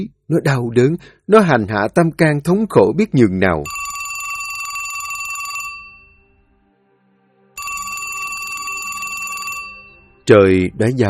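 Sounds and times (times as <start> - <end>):
speech: 0.0 - 3.8, 10.3 - 11.0
telephone on a bedside table ringing loudly past midnight: 3.6 - 6.2, 7.6 - 10.2.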